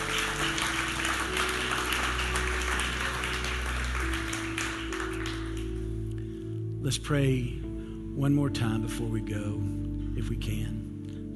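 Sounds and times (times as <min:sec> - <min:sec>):
audience clapping hands in praise: 0:00.0 - 0:06.2
held keyboard or organ chord: 0:00.0 - 0:11.3
speech: 0:06.8 - 0:07.6, 0:08.2 - 0:11.3.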